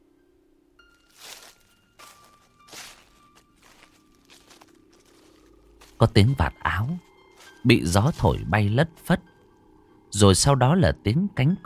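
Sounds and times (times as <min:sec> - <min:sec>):
human footsteps rustling near a house at night: 0:00.9 - 0:09.1
speech: 0:06.0 - 0:09.3, 0:10.2 - 0:11.6.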